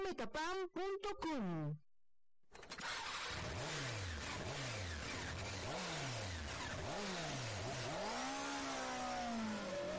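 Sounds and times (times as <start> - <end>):
speech: 0.0 - 1.8
motorcycle engine revving hard: 2.7 - 9.9.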